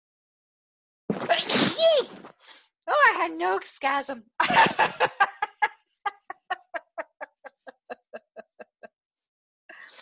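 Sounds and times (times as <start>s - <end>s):
person sneezing: 1.2s - 2.6s
speech: 3.2s - 5.4s
laughter: 4.4s - 8.9s.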